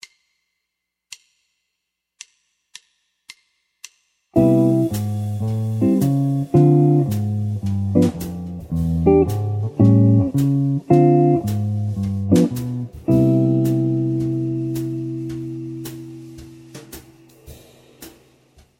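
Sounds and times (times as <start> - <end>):
walking bass line: 4.4 - 17.0.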